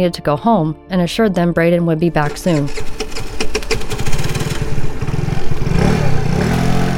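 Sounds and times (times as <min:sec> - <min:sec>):
speech: 0:00.0 - 0:03.0
motorcycle engine revving: 0:02.2 - 0:06.9.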